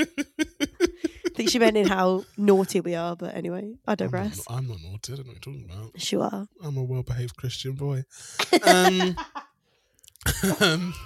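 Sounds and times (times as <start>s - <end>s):
speech: 0.0s - 0.4s, 1.4s - 9.4s, 10.2s - 11.0s
harsh voiced hacking coughing fit: 0.0s - 2.3s, 8.2s - 9.2s, 10.2s - 11.0s
laughter: 0.0s - 2.8s, 7.8s - 9.4s, 10.3s - 11.0s.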